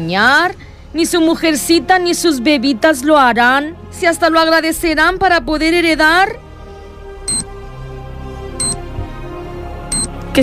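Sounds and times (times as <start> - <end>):
speech: 0.0 - 6.4
mobile phone electronic beeps: 7.3 - 7.5, 8.6 - 8.8, 9.9 - 10.1.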